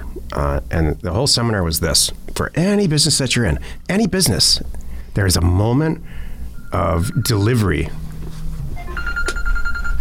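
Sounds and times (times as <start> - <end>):
speech: 0.3 - 8.0
phone ringing with pulsing electronic tone: 8.8 - 9.9.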